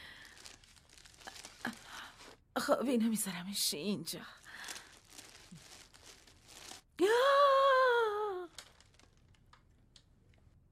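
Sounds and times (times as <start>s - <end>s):
very shiny gift wrapping paper crinkling and rustling on a present: 0.0s - 2.4s, 4.1s - 7.0s, 8.2s - 10.0s
speech: 2.6s - 4.6s.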